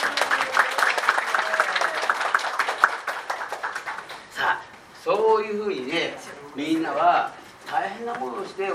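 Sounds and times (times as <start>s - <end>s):
audience applause: 0.0s - 4.4s
speech: 5.4s - 8.7s.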